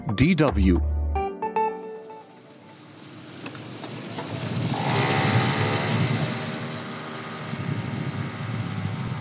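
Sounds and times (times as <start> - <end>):
speech: 0.2 - 0.9
road and wind noise: 2.2 - 9.1
small scooter engine revving while ridden through the streets of Beirut: 2.3 - 9.1.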